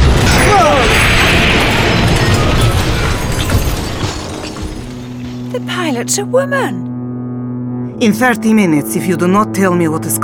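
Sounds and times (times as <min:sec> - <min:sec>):
German panzer tanks approaching, clanking and rumbling: 0:00.0 - 0:06.1
speech: 0:06.0 - 0:06.9, 0:08.0 - 0:10.2.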